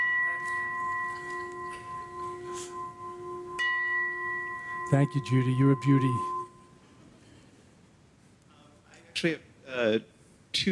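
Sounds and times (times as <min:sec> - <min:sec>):
struck gong ringing: 0:00.0 - 0:06.6
speech: 0:04.9 - 0:06.4, 0:09.2 - 0:10.7.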